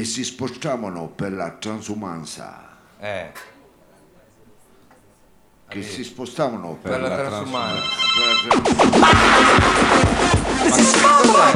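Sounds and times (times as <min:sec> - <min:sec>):
speech: 0:00.0 - 0:03.6, 0:05.7 - 0:11.5
phone text-message notification tone and chirpy synthetic jingle: 0:07.6 - 0:08.8.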